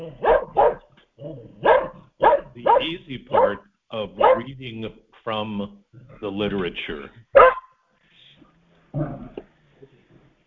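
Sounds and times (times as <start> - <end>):
speech: 0.0 - 0.3, 2.8 - 7.2
dog barking: 0.0 - 0.9, 1.5 - 4.6, 7.3 - 7.8
dog yelping: 0.0 - 3.6, 4.2 - 4.5, 7.4 - 7.7.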